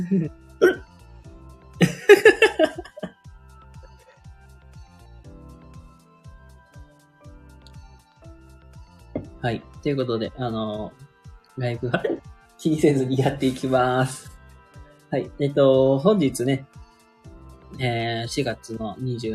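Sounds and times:
speech: 0:00.0 - 0:00.7, 0:09.4 - 0:11.0, 0:11.6 - 0:14.3, 0:15.1 - 0:16.8, 0:17.7 - 0:19.3
man around thirty hiccuping during a live stream: 0:00.0 - 0:00.9
laughter: 0:01.8 - 0:03.1.

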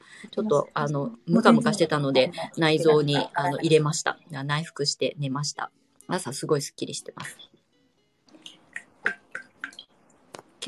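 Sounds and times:
faint hiss: 0:00.0 - 0:10.6
speech: 0:00.2 - 0:07.5
water dripping and splashing as clay is rinsed off a hand: 0:08.4 - 0:09.9.

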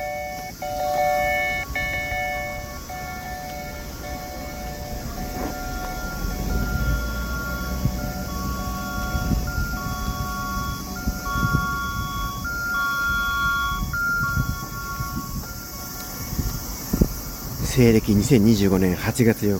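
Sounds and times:
parking garage exit warning two-tone electronic chime: 0:00.0 - 0:17.3
low rumble of outdoor traffic: 0:00.0 - 0:19.5
speech: 0:17.8 - 0:19.5.

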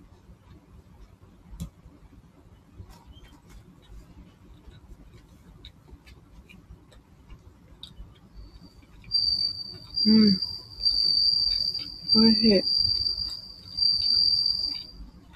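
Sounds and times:
bell crickets chirping in a high-pitched ringing trill: 0:08.4 - 0:15.3
speech: 0:10.0 - 0:10.5, 0:12.2 - 0:12.8.

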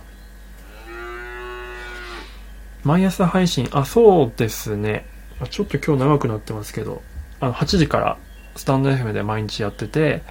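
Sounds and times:
human voice imitating a cow moo as a greeting: 0:00.6 - 0:02.4
speech: 0:02.8 - 0:10.2.

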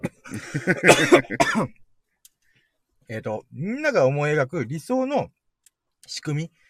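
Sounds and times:
harsh coughing: 0:00.0 - 0:01.8
speech: 0:00.3 - 0:01.8, 0:03.1 - 0:05.4, 0:06.1 - 0:06.6.

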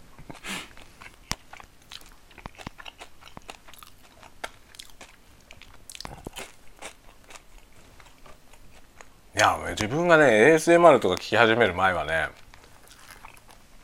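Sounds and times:
person biting and chewing hard toasted bread: 0:00.3 - 0:09.1, 0:12.3 - 0:13.8
speech: 0:09.4 - 0:12.4.

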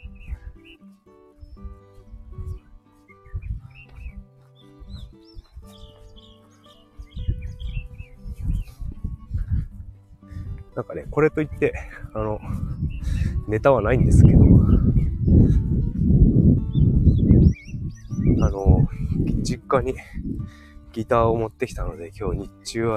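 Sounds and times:
birds chirping outdoors: 0:00.0 - 0:22.9
low rumbling: 0:07.4 - 0:20.6
speech: 0:10.8 - 0:12.7, 0:13.5 - 0:15.0, 0:19.7 - 0:22.9.

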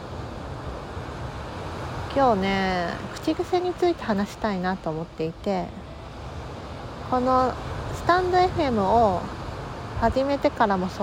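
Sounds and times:
ocean surf at a rocky shoreline: 0:00.0 - 0:11.0
speech: 0:02.1 - 0:05.8, 0:07.1 - 0:09.4, 0:10.0 - 0:11.0.

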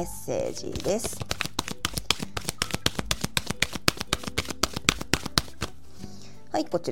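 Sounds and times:
speech: 0:00.0 - 0:01.4, 0:06.5 - 0:06.9
oracle cards shuffled and drawn: 0:00.5 - 0:05.8.

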